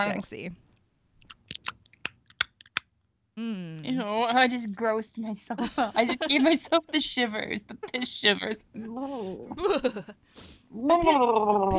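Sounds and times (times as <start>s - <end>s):
speech: 0.0s - 0.6s, 3.4s - 11.7s
crunchy food chewed close to the microphone: 1.2s - 2.8s
laughter: 5.6s - 8.6s.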